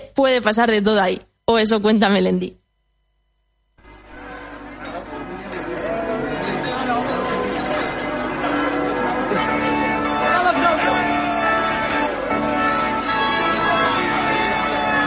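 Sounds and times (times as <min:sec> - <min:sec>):
speech: 0:00.2 - 0:02.6
murmur of voices: 0:03.8 - 0:15.0
wedding church bells ringing: 0:07.3 - 0:15.0.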